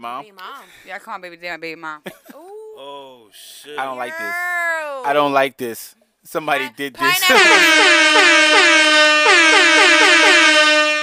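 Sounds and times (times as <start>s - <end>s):
speech: 0.0s - 9.1s
air horn sound effect: 7.0s - 11.0s.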